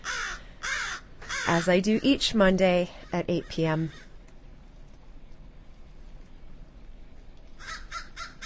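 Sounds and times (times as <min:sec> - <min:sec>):
group of crows cawing while being fed: 0:00.0 - 0:01.8, 0:03.0 - 0:04.2, 0:07.6 - 0:08.4
steady outdoor rumble and hiss: 0:00.0 - 0:08.4
speech: 0:01.5 - 0:04.0.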